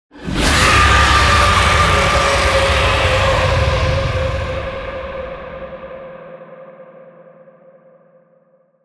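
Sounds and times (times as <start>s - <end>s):
giant monster scream: 0.1s - 6.2s.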